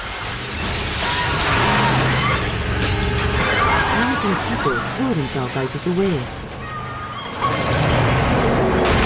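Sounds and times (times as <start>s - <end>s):
heavy armored truck smashing through a large plate glass bank window: 0.3s - 4.9s, 7.3s - 9.0s
speech: 4.3s - 6.5s.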